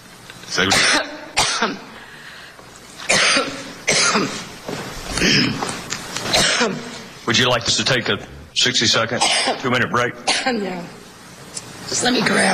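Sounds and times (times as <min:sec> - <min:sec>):
speech: 0:00.5 - 0:01.9, 0:04.2 - 0:04.4, 0:05.2 - 0:05.8, 0:06.6 - 0:11.0, 0:11.9 - 0:12.5
woman's harsh raspy coughing fit: 0:00.7 - 0:02.0, 0:03.1 - 0:04.5, 0:05.2 - 0:05.7, 0:06.3 - 0:07.0, 0:09.2 - 0:09.7, 0:10.3 - 0:10.9.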